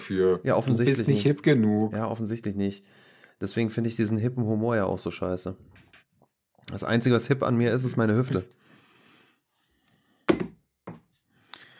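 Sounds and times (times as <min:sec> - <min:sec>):
speech: 0:00.1 - 0:05.9, 0:06.7 - 0:08.6
hollow knocks on wood: 0:10.3 - 0:11.0.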